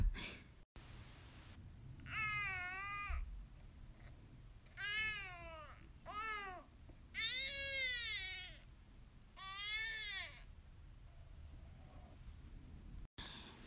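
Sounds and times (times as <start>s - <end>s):
sleepy baby's whiny yawning cry: 2.0s - 3.3s, 4.8s - 8.7s, 9.4s - 10.5s.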